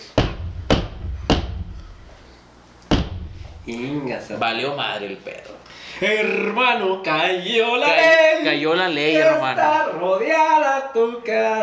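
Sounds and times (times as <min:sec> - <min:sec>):
loud heavy knocking on a door: 0:00.0 - 0:01.8, 0:02.9 - 0:03.6
speech: 0:03.7 - 0:11.6.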